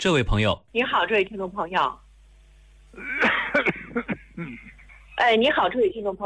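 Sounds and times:
speech: 0:00.0 - 0:02.0, 0:02.9 - 0:06.2
person coughing and clearing their throat over a phone line: 0:03.0 - 0:04.8.

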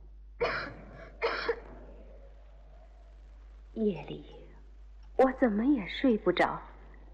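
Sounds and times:
girl coughing harshly: 0:00.4 - 0:01.7
speech: 0:03.8 - 0:04.4, 0:05.2 - 0:06.7.

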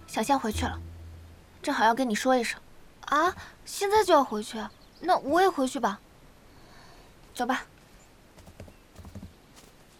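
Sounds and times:
steady hiss: 0:00.0 - 0:09.9
speech: 0:00.2 - 0:00.9, 0:01.6 - 0:06.0, 0:07.4 - 0:07.7
horse hooves clip-clopping as horses are ridden: 0:08.4 - 0:09.9.

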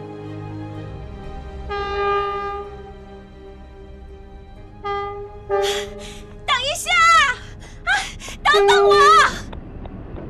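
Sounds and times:
steady low rumble of a train departing from Hangzhou: 0:00.0 - 0:10.2
train horn of a departing train: 0:01.6 - 0:03.0, 0:04.7 - 0:06.0.

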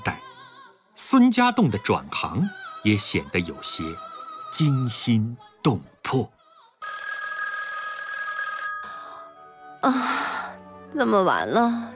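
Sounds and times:
speech: 0:01.0 - 0:07.0, 0:09.8 - 0:10.3, 0:10.9 - 0:11.9
old-fashioned telephone bell ringing late at night: 0:06.8 - 0:09.6.

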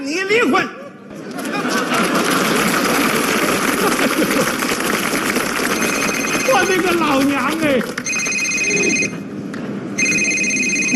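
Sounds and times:
speech: 0:00.2 - 0:00.8, 0:06.6 - 0:08.0
laughter: 0:00.8 - 0:05.3
telephone ringing in trilling bursts: 0:05.5 - 0:09.3, 0:10.0 - 0:10.9.

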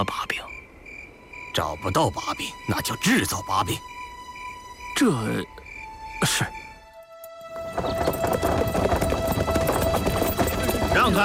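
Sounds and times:
speech: 0:00.0 - 0:00.5, 0:01.6 - 0:04.0, 0:05.0 - 0:05.6, 0:06.2 - 0:06.6, 0:07.8 - 0:08.4
horse hooves clip-clopping as a horse-drawn carriage passes: 0:07.4 - 0:11.2.

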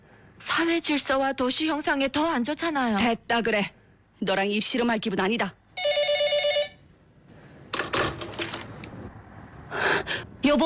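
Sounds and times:
speech: 0:00.6 - 0:05.6
telephone bell ringing: 0:05.8 - 0:06.8
telephone handset being handled, clattering and rustling: 0:07.7 - 0:09.0.

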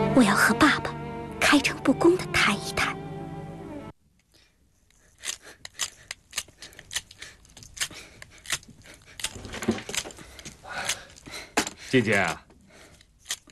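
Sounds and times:
speech: 0:00.2 - 0:02.9, 0:11.9 - 0:12.4
pencils being sharpened: 0:04.8 - 0:10.5.

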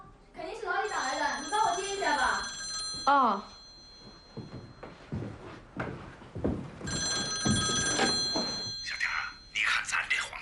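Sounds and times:
home telephone ringing: 0:00.5 - 0:04.9, 0:06.9 - 0:10.3.

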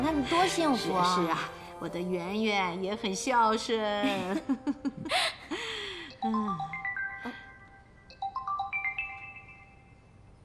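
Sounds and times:
speech: 0:00.2 - 0:05.3
mobile phone ringtone of an unanswered call: 0:06.2 - 0:10.2.

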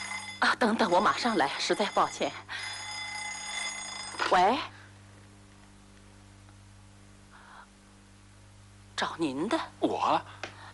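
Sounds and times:
telephone ringing: 0:00.0 - 0:04.7
people talking: 0:00.4 - 0:02.4, 0:09.0 - 0:10.3.

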